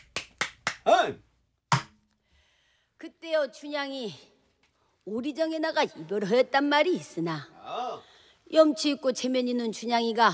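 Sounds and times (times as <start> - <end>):
sharp handclaps: 0.0 - 1.0
speech: 0.9 - 1.3, 3.0 - 4.3, 5.0 - 10.3.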